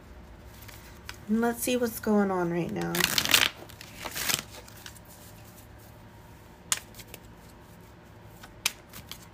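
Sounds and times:
speech: 1.3 - 3.4
oracle cards being shuffled: 2.7 - 5.7, 6.7 - 9.3.

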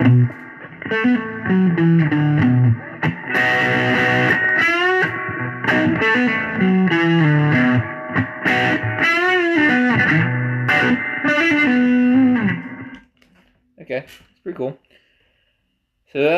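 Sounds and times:
overdriven electric guitar through a Deluxe Reverb amp with delay: 0.0 - 13.0
speech: 0.3 - 3.6, 14.1 - 15.0, 16.1 - 16.3.

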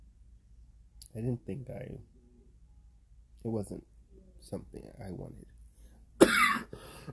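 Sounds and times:
speech: 1.2 - 2.2, 3.4 - 5.6
quiet breathy sounds: 5.5 - 7.1
person coughing: 6.2 - 6.9.

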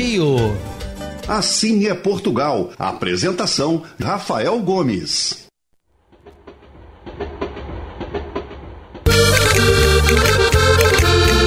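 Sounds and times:
speech: 0.1 - 0.7, 1.3 - 5.4
train rumbling with clickety-clack rhythm: 6.0 - 11.4.

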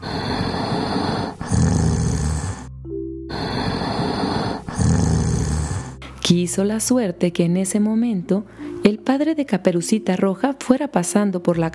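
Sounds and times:
wolf snoring loudly while asleep: 0.0 - 2.7, 3.3 - 6.0
speech: 6.3 - 11.7.

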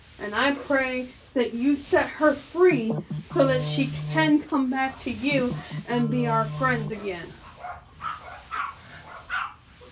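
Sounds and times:
speech: 0.2 - 7.8
faint hum: 0.3 - 8.3
dogs barking: 7.5 - 9.6.

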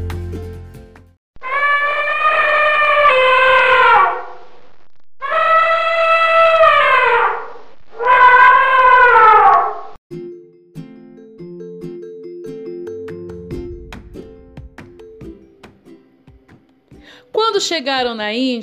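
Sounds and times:
Indian circus elephant trumpeting with its trunk raised: 1.4 - 4.3, 5.3 - 9.9
low rumbling clattering sound: 13.5 - 15.2
speech: 17.7 - 18.6.

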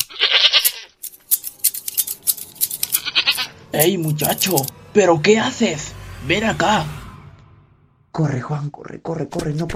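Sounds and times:
goats bleating at a farm: 0.0 - 1.0, 2.9 - 3.7
speech: 3.8 - 7.0, 8.2 - 9.7.

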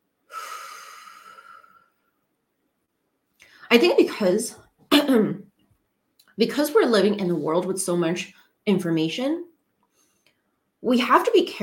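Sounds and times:
deep human breath in and out during a breathing exercise: 0.3 - 2.2
speech: 3.7 - 5.5, 6.4 - 9.5, 10.8 - 11.6.

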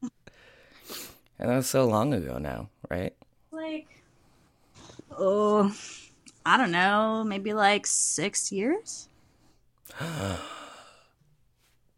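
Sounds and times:
speech: 1.4 - 3.3, 5.2 - 9.1, 9.9 - 10.6
two people gasping: 9.9 - 11.0.

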